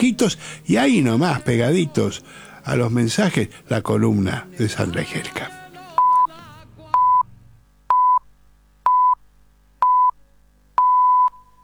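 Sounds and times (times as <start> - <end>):
speech: 0.0 - 5.6
radio station time signal beeps in Argentina: 6.0 - 6.3, 7.0 - 7.2, 7.9 - 8.2, 8.9 - 9.2, 10.8 - 11.6.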